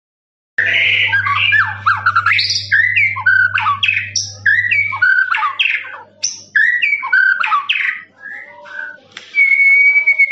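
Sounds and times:
lovebird chattering song: 0.6 - 8.1
steady low electrical hum: 0.6 - 10.3.

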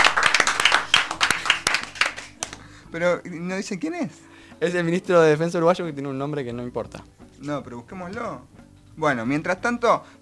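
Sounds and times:
applause from an audience: 0.0 - 2.6
speech: 2.9 - 10.2.

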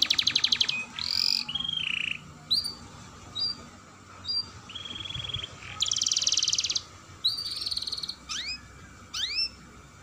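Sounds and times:
Atlantic canary singing vigorously in gacor style: 0.0 - 9.9.

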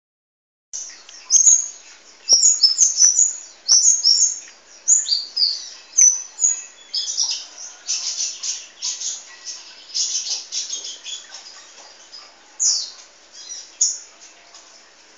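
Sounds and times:
Oriental magpie-robin singing clear whistled notes: 0.8 - 11.3
Oriental magpie-robin scratchy chatter: 0.8 - 15.1.

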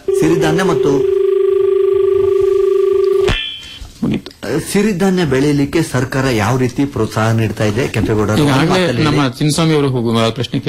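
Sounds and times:
telephone ringing with warbling two-tone ring: 0.0 - 3.3
speech: 0.2 - 1.1, 4.5 - 10.6.

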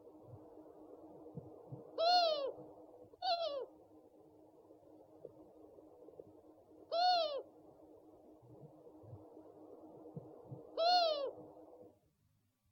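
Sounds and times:
owl giving drawn-out arched calls: 1.9 - 2.6, 3.2 - 3.7, 6.9 - 7.5, 10.7 - 11.4.

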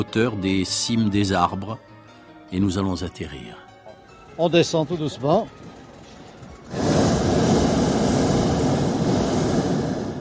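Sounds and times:
speech: 0.0 - 1.9, 2.5 - 3.6, 4.4 - 5.7
hot air balloon burner roaring while landing near treetops: 6.6 - 10.1.

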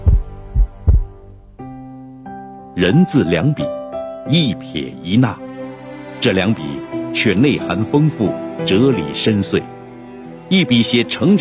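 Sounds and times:
heartbeat thumps: 0.0 - 1.3
speech: 2.8 - 5.4, 6.2 - 9.7, 10.5 - 11.3.

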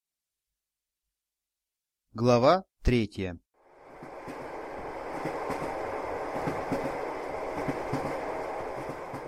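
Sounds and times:
speech: 2.2 - 3.4
train wheels clattering on rails inside a sleeper-car passenger train: 3.9 - 9.2.

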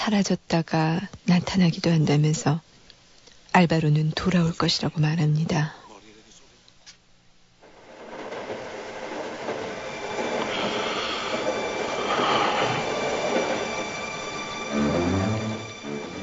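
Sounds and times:
speech: 0.1 - 2.7, 3.5 - 5.8
train travelling on rails on the way home to Sicily: 7.6 - 16.2.

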